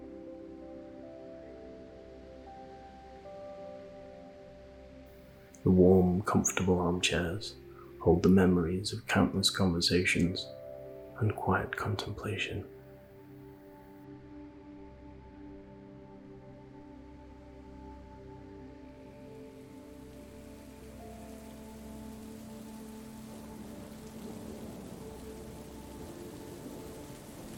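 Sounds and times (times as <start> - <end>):
speech: 5.6 - 10.6, 11.2 - 12.8
rain splattering against window glass: 19.9 - 27.5.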